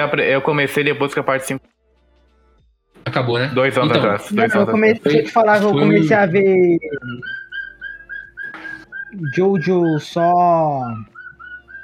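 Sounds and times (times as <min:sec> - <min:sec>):
speech: 0:00.0 - 0:01.8, 0:03.0 - 0:07.4, 0:09.1 - 0:11.1
pet parakeet chirping: 0:03.4 - 0:11.8.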